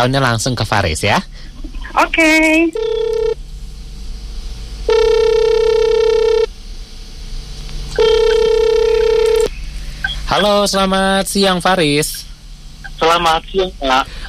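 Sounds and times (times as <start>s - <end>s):
speech: 0.0s - 2.9s, 10.4s - 12.2s, 13.0s - 14.2s
ringback tone of an outgoing telephone call: 2.8s - 3.4s, 4.9s - 6.5s, 8.0s - 9.5s.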